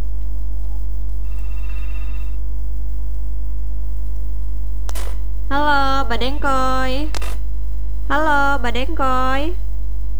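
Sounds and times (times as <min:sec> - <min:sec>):
steady loud electrical hum: 0:00.0 - 0:10.1
telephone ringing for incoming call: 0:01.2 - 0:02.5, 0:04.9 - 0:07.5, 0:08.1 - 0:09.6
speech: 0:05.6 - 0:07.4, 0:08.1 - 0:09.6.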